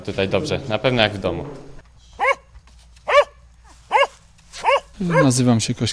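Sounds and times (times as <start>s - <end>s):
speech: 0.0s - 1.7s, 5.0s - 5.9s
dog barking indoors: 2.2s - 2.4s, 3.1s - 5.4s.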